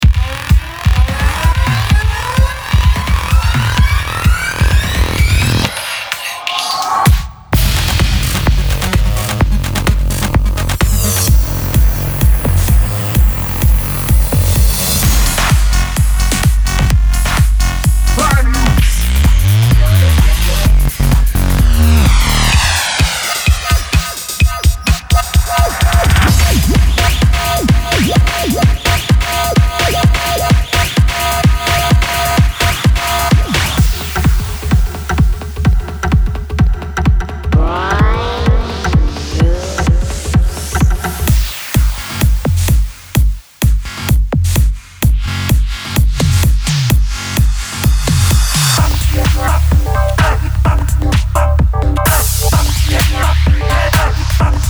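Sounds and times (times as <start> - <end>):
mainroom electronic dance drums: 0.0 - 54.6.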